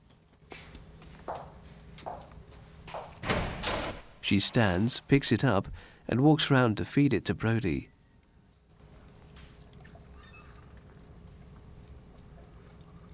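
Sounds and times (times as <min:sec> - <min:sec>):
footsteps approaching: 0:00.0 - 0:03.2
speech: 0:04.3 - 0:08.0.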